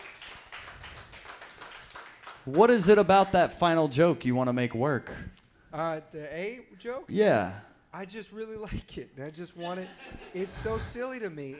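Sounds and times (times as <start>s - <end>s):
audience applauding a performer: 0.0s - 2.8s
speech: 2.4s - 11.5s
laughter: 9.5s - 11.5s.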